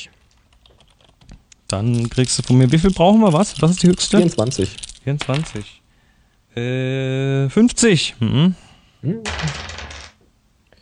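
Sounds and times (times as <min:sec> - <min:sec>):
physical dice rolling on a table during a game: 0:01.7 - 0:05.7, 0:09.3 - 0:10.2
speech: 0:01.7 - 0:05.8, 0:06.6 - 0:09.6.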